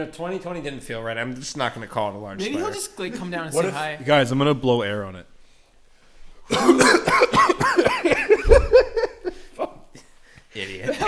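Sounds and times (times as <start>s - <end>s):
speech: 0.0s - 5.3s, 6.5s - 8.6s
person coughing: 6.5s - 9.3s
laughter: 6.6s - 11.0s.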